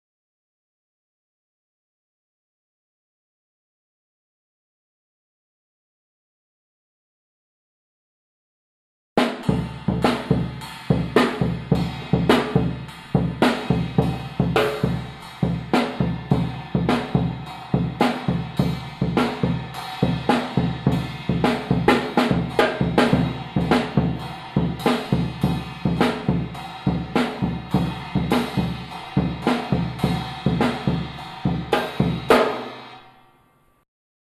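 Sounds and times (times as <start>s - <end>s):
drum kit: 9.2s - 33.1s.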